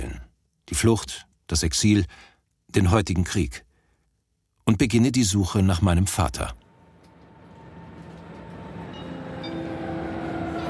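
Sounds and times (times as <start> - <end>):
speech: 0.7 - 3.7, 4.7 - 6.6
train rolling into a railway station: 6.6 - 10.6
faint high squeals and hums of train brakes and wheels: 6.9 - 10.6.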